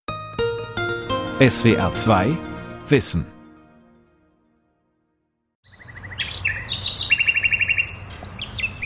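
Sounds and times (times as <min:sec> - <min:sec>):
speech: 0:01.4 - 0:03.3
common nightingale singing: 0:05.6 - 0:08.8.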